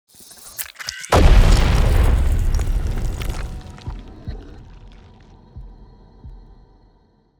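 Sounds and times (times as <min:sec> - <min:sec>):
heart destruction explosion: 0:00.9 - 0:05.2.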